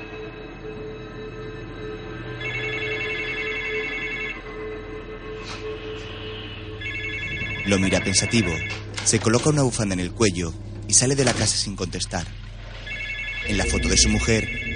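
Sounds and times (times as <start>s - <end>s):
telephone ringing with bright trilling tones: 2.2s - 4.8s, 6.8s - 9.8s, 12.8s - 14.7s
speech: 7.7s - 12.4s, 13.4s - 14.7s
steady low rumble: 9.7s - 14.7s.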